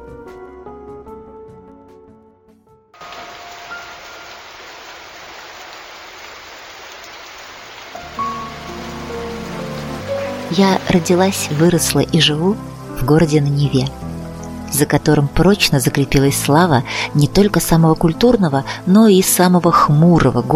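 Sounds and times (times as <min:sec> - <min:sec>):
soft melodic music: 0:03.0 - 0:05.2, 0:07.9 - 0:20.5
steady dense falling rain: 0:03.0 - 0:13.0
speech: 0:10.5 - 0:14.1, 0:14.7 - 0:20.5.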